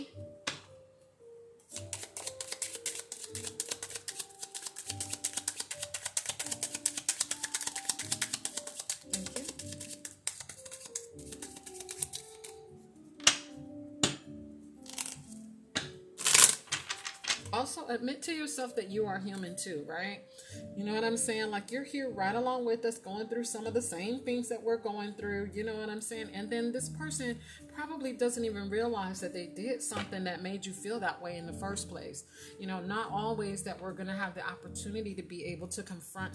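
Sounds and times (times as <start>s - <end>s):
soft music: 0.0s - 36.3s
tarot cards being shuffled: 1.7s - 14.2s, 14.8s - 17.6s
speech: 17.9s - 36.3s.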